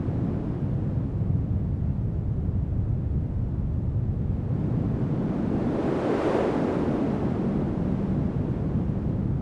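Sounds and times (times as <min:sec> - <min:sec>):
outdoor wind: 0:00.0 - 0:09.3.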